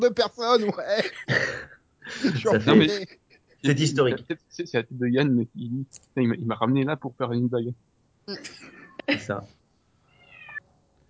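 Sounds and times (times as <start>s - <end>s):
laughter: 0.0s - 5.4s
speech: 0.0s - 9.6s
low quiet hum: 0.0s - 11.0s
cat meowing: 10.1s - 10.6s.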